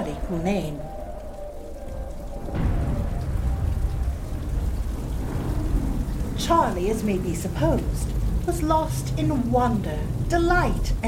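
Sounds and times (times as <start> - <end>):
heavy rain pouring: 0.0 - 11.0
speech: 0.3 - 1.0, 6.5 - 11.0.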